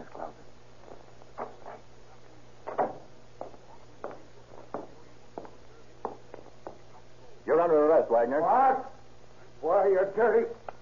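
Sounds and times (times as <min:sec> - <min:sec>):
soft footsteps of someone in a hall: 0:00.0 - 0:07.3
low steady hum: 0:00.0 - 0:10.8
speech: 0:07.6 - 0:08.9, 0:09.6 - 0:10.6.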